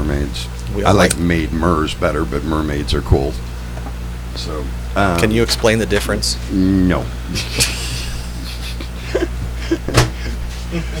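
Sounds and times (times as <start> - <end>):
low steady hum: 0.0 - 10.9
speech: 0.2 - 3.5, 4.4 - 7.8, 10.7 - 10.9
laughter: 7.3 - 10.9
door closing as someone walks out: 9.9 - 10.2
soft shuffling movements: 10.3 - 10.9.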